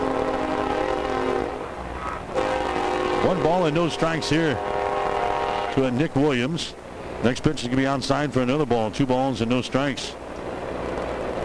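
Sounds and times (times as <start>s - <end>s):
train horn blaring while passing a ballpark: 0.0s - 6.4s
train rumbling while passing a ballpark: 0.0s - 11.4s
speech: 3.2s - 4.7s, 5.8s - 10.2s.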